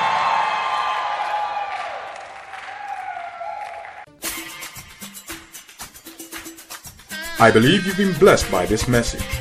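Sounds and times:
applause: 0.0 - 4.1
clapping and shouts: 0.0 - 4.1
congregation screaming and cheering: 0.0 - 4.1
speech: 7.4 - 9.3.

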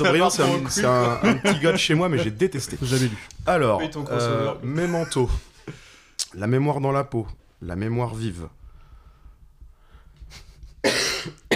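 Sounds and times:
speech: 0.0 - 8.6
person fake coughing to win a game: 10.8 - 11.5.

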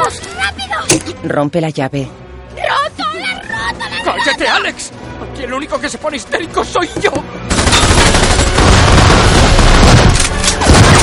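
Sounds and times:
speech: 0.5 - 2.8, 3.7 - 8.0
pistol gunfire in an action-fantasy film scene: 7.5 - 11.0.

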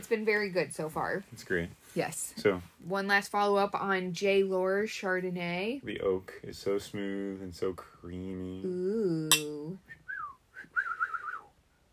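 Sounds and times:
speech: 0.0 - 10.0
person whistling: 9.8 - 11.6.

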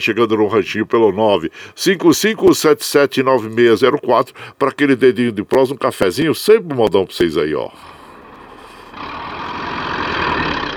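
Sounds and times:
speech: 0.0 - 8.0
truck engine running: 8.2 - 10.7.

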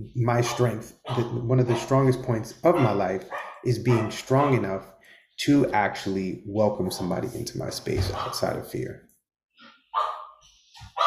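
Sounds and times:
speech: 0.0 - 9.0
two dogs barking: 0.3 - 4.8, 6.9 - 7.3, 8.0 - 8.6, 9.9 - 11.0
dog yelping: 0.4 - 1.9, 2.8 - 4.6, 8.1 - 8.5, 9.9 - 11.0.

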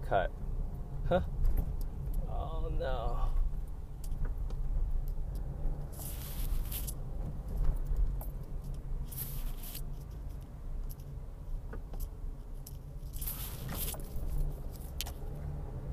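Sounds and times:
car engine and road rumble heard from inside: 0.0 - 15.9
speech: 0.1 - 0.4, 1.1 - 1.4, 2.8 - 3.4
hissing of passing traffic or tire spray: 5.9 - 7.0.

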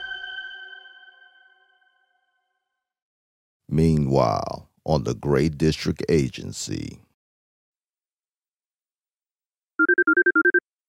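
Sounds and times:
speech: 3.7 - 7.0
phone ringing with a bright electronic ringtone: 9.8 - 10.6.

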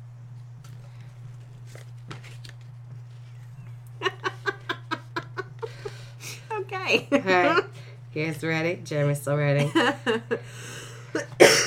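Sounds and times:
low steady hum: 0.0 - 11.6
speech: 1.7 - 2.1, 6.9 - 11.6
laughter: 4.0 - 6.0, 9.6 - 10.5
person coughing: 11.1 - 11.6.

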